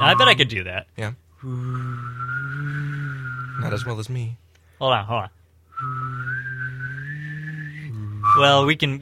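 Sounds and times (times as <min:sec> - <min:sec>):
person whistling a wavering gliding tone imitating a theremin: 0:00.0 - 0:00.4, 0:01.6 - 0:03.9, 0:05.8 - 0:08.7
speech: 0:00.0 - 0:02.4, 0:03.6 - 0:06.2, 0:08.4 - 0:08.9
person humming a low steady drone: 0:01.4 - 0:03.4, 0:06.0 - 0:08.4.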